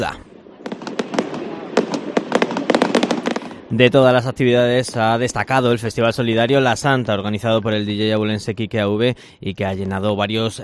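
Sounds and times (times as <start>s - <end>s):
speech: 0.0s - 0.3s, 3.7s - 10.6s
fireworks exploding: 0.0s - 5.6s.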